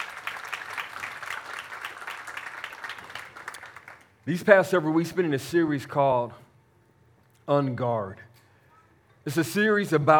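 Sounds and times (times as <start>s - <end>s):
crowd applauding: 0.0s - 4.1s
speech: 4.2s - 6.4s, 7.5s - 8.3s, 9.2s - 10.1s.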